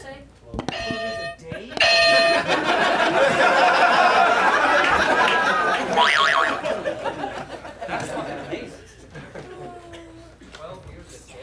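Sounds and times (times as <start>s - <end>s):
novelty game buzzers blaring: 0.7s - 2.8s, 5.9s - 6.6s
overlapping chatter from a group: 0.7s - 10.2s
group laughing: 1.7s - 9.9s.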